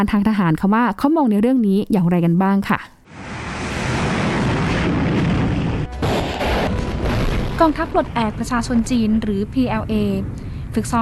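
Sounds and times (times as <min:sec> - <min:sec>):
speech: 0:00.0 - 0:03.3, 0:07.6 - 0:11.0
short-range ballistic missile test launch roar in a northwestern desert: 0:03.1 - 0:10.4.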